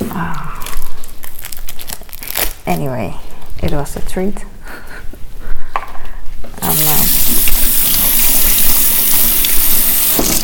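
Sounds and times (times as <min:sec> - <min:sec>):
speech: 0:00.2 - 0:00.6, 0:02.7 - 0:04.8
tap water running into a sink while washing vegetables: 0:06.6 - 0:10.4.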